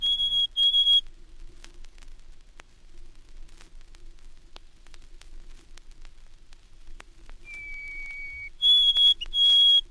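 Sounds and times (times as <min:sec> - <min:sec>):
White-throated Sparrow singing clear whistles: 0:00.0 - 0:01.0, 0:07.4 - 0:09.8.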